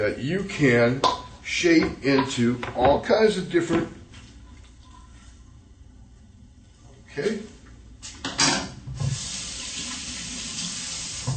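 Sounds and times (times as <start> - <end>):
speech: 0.0 - 4.0
water running from a kitchen tap: 9.0 - 11.3.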